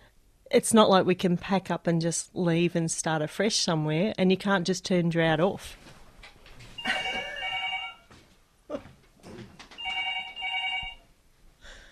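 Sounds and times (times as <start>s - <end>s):
speech: 0.5s - 5.8s
telephone ringing: 6.8s - 8.1s, 9.8s - 11.1s.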